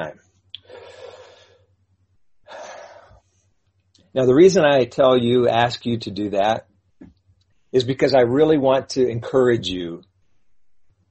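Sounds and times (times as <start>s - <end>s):
speech: 0.0s - 0.3s, 4.2s - 6.7s, 7.7s - 10.1s
faint steady low hum: 0.0s - 11.0s
deep cleansing breaths: 0.6s - 1.7s, 2.4s - 3.3s.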